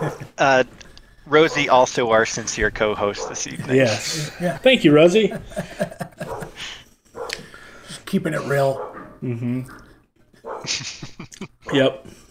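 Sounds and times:
dog barking with short sharp yaps: 0:00.0 - 0:00.3, 0:03.1 - 0:03.5, 0:06.2 - 0:06.6, 0:07.2 - 0:07.4, 0:08.7 - 0:09.1, 0:10.4 - 0:10.7
laughter: 0:00.0 - 0:00.4, 0:03.4 - 0:06.8, 0:10.4 - 0:12.2
speech: 0:00.0 - 0:06.0, 0:08.1 - 0:09.8, 0:10.6 - 0:12.2.

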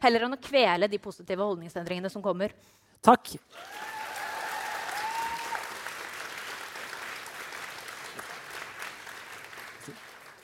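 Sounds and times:
speech: 0:00.0 - 0:03.9
audience applause: 0:03.6 - 0:10.4.

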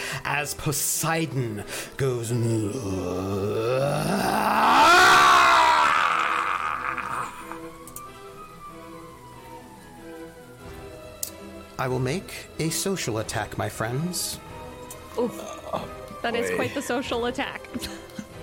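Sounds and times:
speech: 0:00.2 - 0:05.0, 0:11.8 - 0:14.5, 0:15.2 - 0:18.0
human voice imitating an eerie deep-sea shriek and wail: 0:02.7 - 0:07.7.

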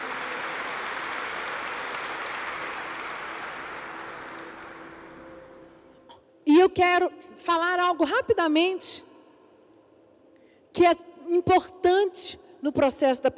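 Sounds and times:
crowd applauding: 0:00.0 - 0:05.8
speech: 0:06.7 - 0:09.1, 0:10.8 - 0:13.3.

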